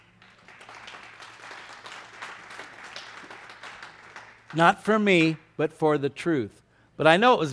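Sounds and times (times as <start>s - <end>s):
crowd applauding with many hands clapping: 0.0s - 5.4s
speech: 4.5s - 7.5s.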